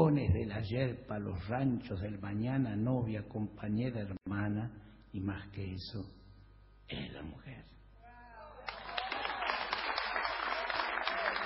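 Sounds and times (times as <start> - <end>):
speech: 0.1 - 6.2, 6.9 - 7.8
crowd applauding: 8.6 - 11.4.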